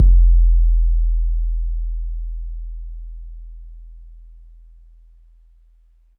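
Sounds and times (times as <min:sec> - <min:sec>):
808 bass drum from an MPC60 in smooth E: 0:00.0 - 0:03.7.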